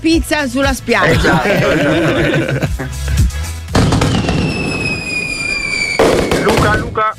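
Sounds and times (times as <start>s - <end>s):
speech: 0.0s - 3.0s
laughter: 1.0s - 3.1s
fireworks booming and crackling: 3.7s - 7.0s
high whistling firework rocket: 4.0s - 6.9s.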